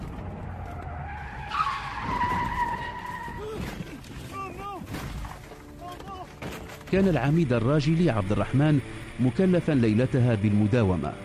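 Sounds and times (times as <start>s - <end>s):
car tires screeching in a skid: 0.0s - 4.2s
car engine and road noise: 0.0s - 11.2s
car rumbling and scraping as it leaves the road: 0.0s - 11.2s
speech: 6.9s - 11.2s.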